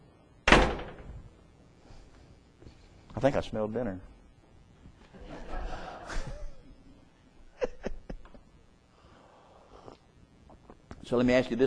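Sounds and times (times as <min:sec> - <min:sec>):
wooden door being pushed open: 0:00.5 - 0:01.1
speech: 0:03.2 - 0:04.1, 0:11.1 - 0:11.6.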